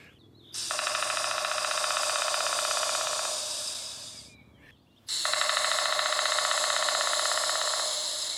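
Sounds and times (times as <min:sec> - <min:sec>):
black woodpecker drumming on a tree trunk: 0:00.6 - 0:04.3, 0:05.1 - 0:08.3.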